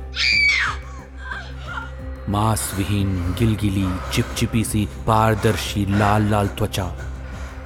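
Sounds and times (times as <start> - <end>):
faint eerie tonal sounds: 0.0 - 7.6
low rumbling drone: 0.0 - 7.6
woman screaming in terror: 0.1 - 1.9
speech: 2.3 - 7.1.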